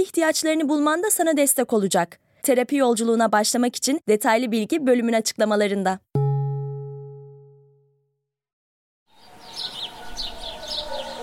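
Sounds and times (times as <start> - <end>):
speech: 0.0 - 6.1
ringing tone: 6.2 - 8.0
birds chirping: 9.1 - 11.2.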